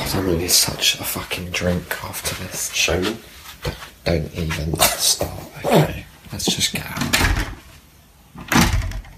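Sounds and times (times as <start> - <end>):
speech: 0.1 - 7.5
door swinging shut with a solid thud: 7.0 - 7.6, 8.4 - 9.1.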